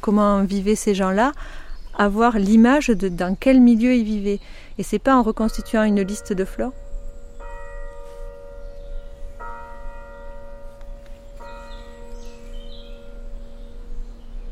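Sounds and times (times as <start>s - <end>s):
speech: 0.0s - 6.8s
faint birdsong: 0.0s - 14.4s
chapel bell tolling in forest: 5.2s - 14.4s.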